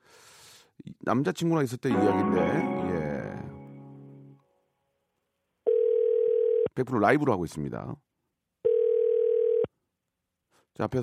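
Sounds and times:
speech: 1.0 - 2.8, 6.8 - 8.1, 10.8 - 11.0
telephone dial tone as a call is placed: 5.7 - 6.7, 8.7 - 9.7.

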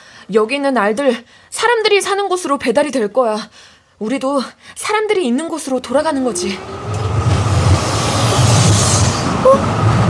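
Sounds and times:
speech: 0.3 - 6.9
road noise: 5.9 - 10.0
delivery truck engine rumble: 6.2 - 10.0.

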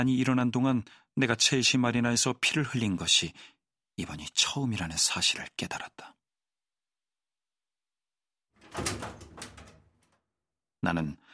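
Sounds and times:
speech: 0.0 - 6.2, 10.8 - 11.2
house door swinging shut with a solid thud: 8.6 - 10.2.

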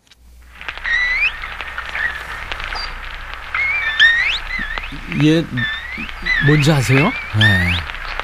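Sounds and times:
dolphin whistles: 0.8 - 8.2
speech: 5.1 - 7.9.

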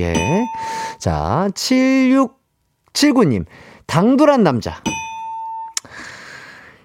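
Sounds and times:
speech: 0.0 - 2.4, 3.0 - 5.0
quiz correct-answer electronic ding-dong chime: 0.1 - 0.9, 4.9 - 5.8.

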